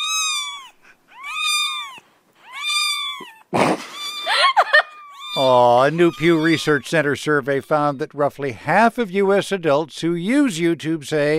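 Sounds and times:
cat meowing: 0:00.0 - 0:07.7
speech: 0:05.4 - 0:11.3.

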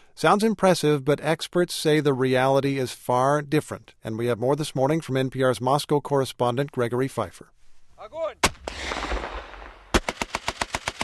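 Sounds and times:
speech: 0:00.2 - 0:09.1
rocket-propelled grenade blasts at army target practice outside Moscow: 0:08.4 - 0:11.0
heavy machine gun burst at army target practice outside Moscow: 0:08.6 - 0:11.0.

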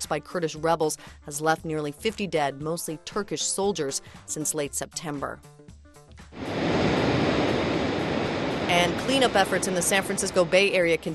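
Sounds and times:
speech: 0:00.1 - 0:05.6, 0:08.7 - 0:11.1
ocean waves breaking on a San Francisco beach: 0:06.4 - 0:11.1.

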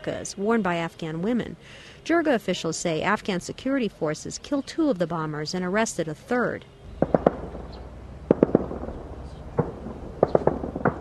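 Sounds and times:
speech: 0:00.0 - 0:07.1
low steady rumble: 0:06.8 - 0:10.9
sharp gunshots echoing off surroundings: 0:07.0 - 0:10.9.

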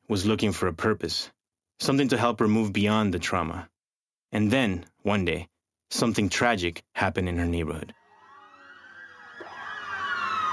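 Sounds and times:
speech: 0:00.1 - 0:03.7, 0:04.3 - 0:08.0
emergency vehicle sirens wailing: 0:08.0 - 0:10.5.

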